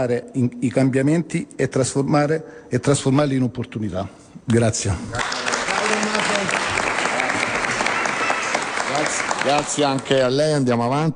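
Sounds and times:
speech: 0:00.0 - 0:05.5, 0:09.5 - 0:11.1
audience applause after a speech: 0:05.2 - 0:10.3.

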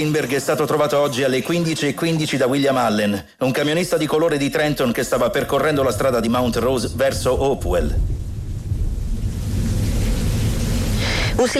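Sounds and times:
speech: 0:00.0 - 0:08.2, 0:11.4 - 0:11.5
deep continuous rumble: 0:04.9 - 0:11.5
steady heavy rain hissing outdoors: 0:05.3 - 0:11.5.

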